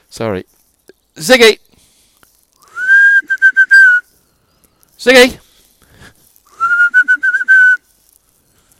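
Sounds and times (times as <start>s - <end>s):
speech: 0.1s - 0.6s, 1.2s - 1.7s, 5.0s - 5.4s
person whistling to call a dog back: 2.6s - 4.1s, 6.5s - 7.9s.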